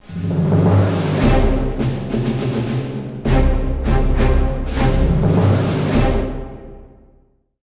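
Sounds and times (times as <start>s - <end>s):
tense music: 0.0s - 7.4s.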